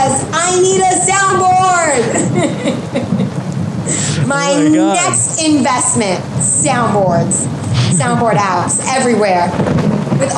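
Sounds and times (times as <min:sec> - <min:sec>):
heavy rain in a thunderstorm: 0:00.0 - 0:10.3
low rumbling thunderstorm undertone: 0:00.0 - 0:10.3
laughter: 0:01.8 - 0:05.1
speech: 0:04.5 - 0:10.3.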